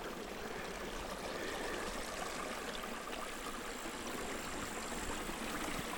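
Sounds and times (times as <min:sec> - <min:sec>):
small stream of flowing water trickling: 0:00.0 - 0:05.9.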